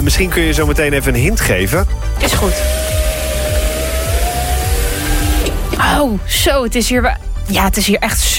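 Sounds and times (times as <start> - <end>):
speech: 0.1 - 3.0, 5.8 - 8.3
car window motor whining while lowering: 2.2 - 6.0.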